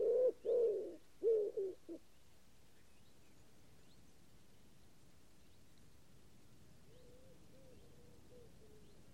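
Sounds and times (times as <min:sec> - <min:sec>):
common wood pigeon cooing: 0:00.0 - 0:02.0, 0:06.9 - 0:08.8.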